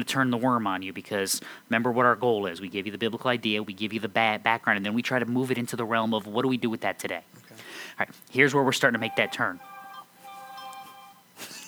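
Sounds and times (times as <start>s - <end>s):
speech: 0.0s - 9.7s
mobile phone ringtone with electronic melodic tones: 9.0s - 11.6s.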